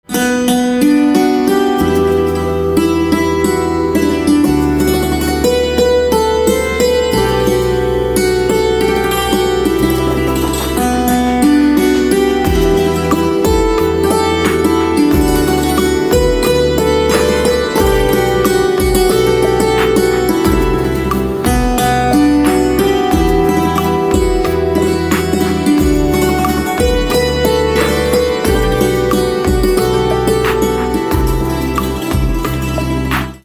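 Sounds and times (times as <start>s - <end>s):
santoor instrumental ringtone: 0.1s - 33.4s.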